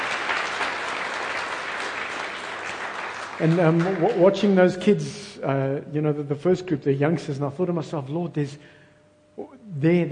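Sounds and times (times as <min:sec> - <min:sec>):
audience applause for Sunday school staff, helpers and volunteers: 0:00.0 - 0:04.6
speech: 0:03.4 - 0:08.8, 0:09.4 - 0:10.1.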